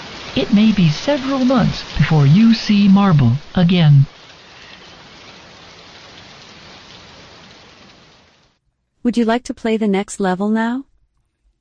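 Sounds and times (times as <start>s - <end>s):
heavy monsoon rain pouring: 0.0s - 8.6s
speech: 0.4s - 4.1s, 9.0s - 10.9s.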